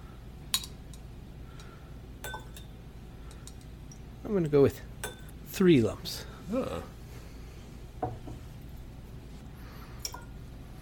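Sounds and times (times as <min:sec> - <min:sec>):
spoon tapping a small glass of water: 0:02.2 - 0:02.7
speech: 0:04.3 - 0:04.9, 0:05.6 - 0:07.0.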